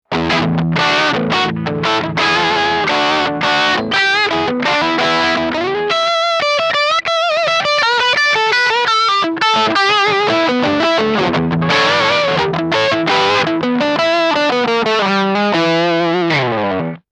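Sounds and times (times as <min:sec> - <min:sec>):
Maxon FL9 wah-like guitar tone: 0:00.0 - 0:17.0.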